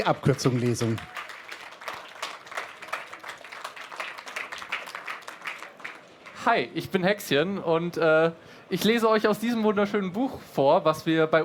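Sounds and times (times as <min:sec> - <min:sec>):
speech: 0:00.0 - 0:01.2, 0:06.4 - 0:11.4
audience applauding: 0:00.0 - 0:06.4.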